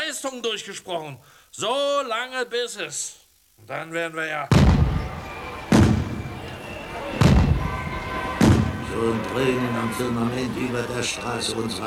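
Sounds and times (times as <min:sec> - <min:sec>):
speech: 0:00.2 - 0:05.2, 0:09.0 - 0:11.8
ceremonial salute gunshots: 0:04.5 - 0:06.5, 0:07.2 - 0:08.9
low murmur: 0:04.5 - 0:11.8.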